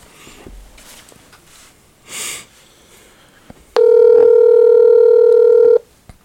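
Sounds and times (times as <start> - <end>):
person sniffing: 2.1 - 3.5
telephone ringing tone from a call being placed: 3.8 - 5.8.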